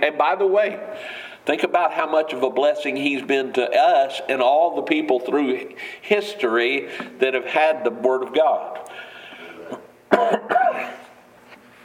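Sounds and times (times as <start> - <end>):
speech: 0.0 - 9.1, 9.7 - 11.0
faint steady hum: 0.0 - 11.8
person with allergies coughing harshly while teaching: 9.4 - 11.2.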